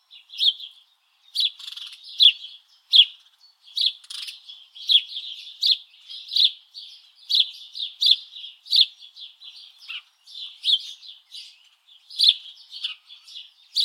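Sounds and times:
Passer domesticus house sparrow loud clipped chirps: 0.0 - 13.8.

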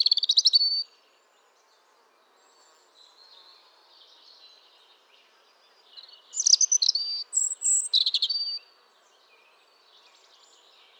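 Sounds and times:
European robin Erithacus rubecula singing: 0.0 - 0.9, 6.0 - 8.6.

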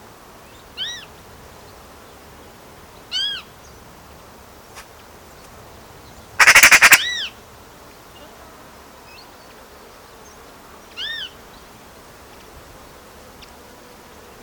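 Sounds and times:
Eurasian magpie Pica pica giving short arched call notes: 6.4 - 7.2.

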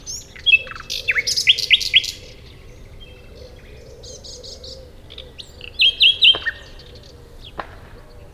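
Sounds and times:
common nightingale Luscinia megarhynchos singing: 0.0 - 8.3.

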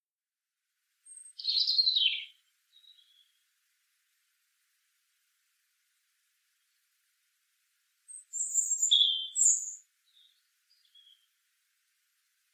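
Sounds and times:
European robin Erithacus rubecula singing: 1.0 - 3.5, 8.1 - 11.3.

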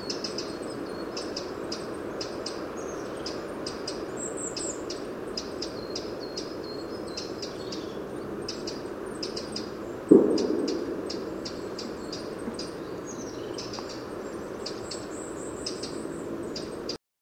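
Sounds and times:
Eurasian wren Troglodytes troglodytes singing: 0.0 - 17.0
dull thump: 10.1 - 11.9.

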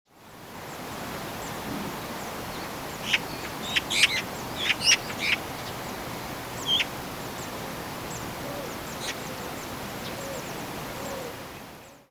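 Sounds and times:
background hiss: 0.2 - 12.1
Eurasian magpie Pica pica giving harsh rasping chatter: 3.0 - 5.4.

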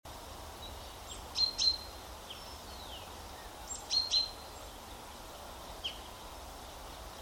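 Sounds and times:
background hiss: 0.1 - 7.1
common chaffinch calls, Fringilla coelebs: 0.6 - 4.8, 5.7 - 6.3.

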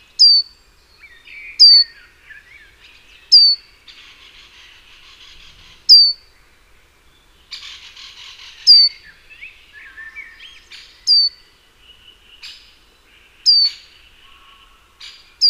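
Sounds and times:
Great tit Parus major calling: 0.2 - 0.5, 1.1 - 2.0, 2.9 - 6.3, 7.5 - 9.2, 9.8 - 11.4, 13.4 - 15.4
Great tit Parus major twittering: 0.2 - 0.5, 1.0 - 6.3, 7.5 - 11.4, 13.4 - 15.4.

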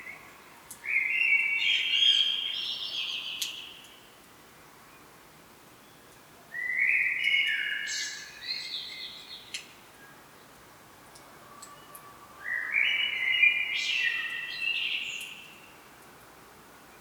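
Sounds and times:
Common blackbird Turdus merula singing fluty whistled phrases: 0.8 - 3.8, 6.6 - 9.6, 11.8 - 15.8.

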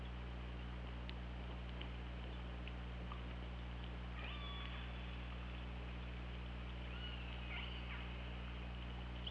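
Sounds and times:
steady low hum and hiss: 0.0 - 9.3
killer whale upswept tonal calls recorded by hydrophone: 4.1 - 5.3, 6.8 - 8.2.

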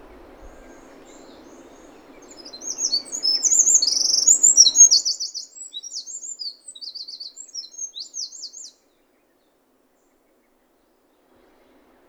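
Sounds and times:
low hiss: 0.0 - 12.0
Eurasian wren Troglodytes troglodytes song: 0.2 - 8.8.

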